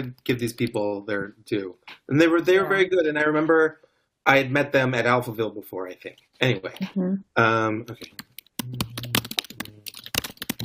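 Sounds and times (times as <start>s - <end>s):
speech: 0.0s - 8.9s
furious typing on a computer keyboard: 8.0s - 10.6s.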